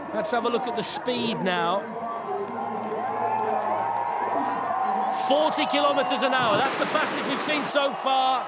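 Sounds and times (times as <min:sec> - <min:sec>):
speech: 0:00.1 - 0:02.0, 0:05.2 - 0:08.4
crowd cheering with shouts and whoops: 0:02.1 - 0:08.4.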